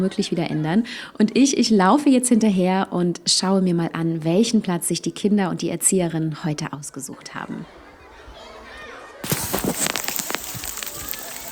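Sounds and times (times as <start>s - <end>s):
speech: 0.0s - 7.8s
light hail or rain pattering among trees in a forest: 9.2s - 11.5s.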